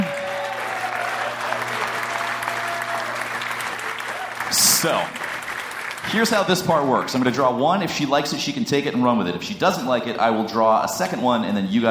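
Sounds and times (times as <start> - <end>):
audience applauding a comedian: 0.0 - 7.6
speech: 4.5 - 5.2, 6.0 - 11.8.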